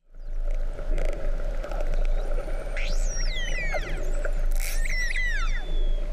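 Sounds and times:
low underwater hum: 0.0 - 6.1
long-finned pilot whale clicks: 0.4 - 6.1
Mediterranean long-finned pilot whale whistles: 2.6 - 6.1.

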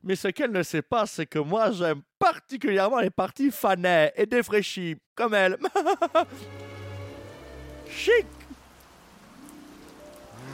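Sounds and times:
speech: 0.1 - 6.7, 7.9 - 8.4
laughter: 5.6 - 6.5
steady rain pattering: 5.9 - 10.5.

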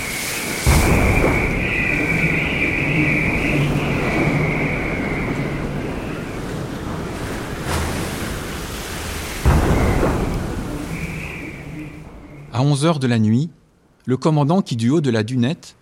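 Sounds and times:
high whistling storm wind: 0.0 - 12.9
roar of churning water: 0.0 - 13.1
storm waves pounding a ship's hull: 0.0 - 14.0
speech: 12.6 - 15.7.

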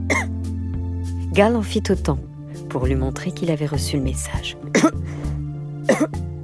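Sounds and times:
person coughing: 0.1 - 0.4, 4.7 - 5.0, 5.9 - 6.2
speech: 1.4 - 5.2, 5.9 - 6.3.

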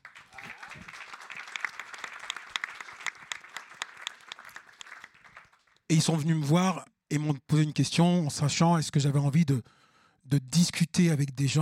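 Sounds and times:
conference audience applauding: 0.0 - 5.8
speech: 5.9 - 11.6.

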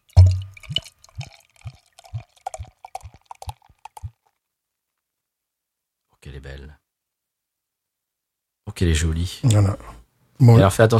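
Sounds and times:
beer pouring from bottle into glass: 0.0 - 4.3
speech: 8.8 - 10.9.

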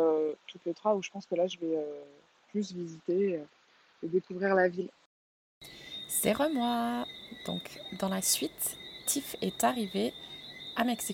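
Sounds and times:
speech: 0.0 - 5.0, 5.6 - 11.1
high-pitched chorus of frogs trilling outdoors at night on a terrace: 5.6 - 11.1.

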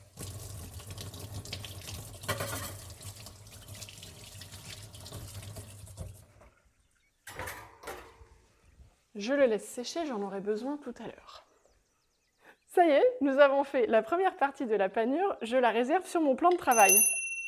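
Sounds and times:
running tap water rinsing a metal whisk under the faucet: 0.0 - 6.4
speech: 9.2 - 11.4, 12.8 - 17.2.

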